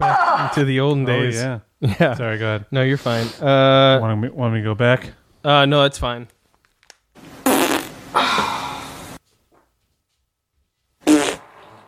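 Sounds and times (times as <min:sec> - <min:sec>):
speech: 0:00.5 - 0:06.4
sputtering fart: 0:07.4 - 0:08.0, 0:11.0 - 0:11.8.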